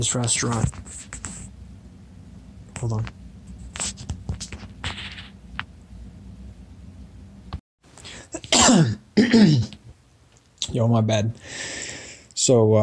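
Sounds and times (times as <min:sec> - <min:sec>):
speech: 0:00.0 - 0:01.3, 0:02.8 - 0:03.2, 0:08.7 - 0:09.8, 0:10.8 - 0:11.6, 0:12.5 - 0:12.8
person coughing harshly: 0:08.4 - 0:09.8.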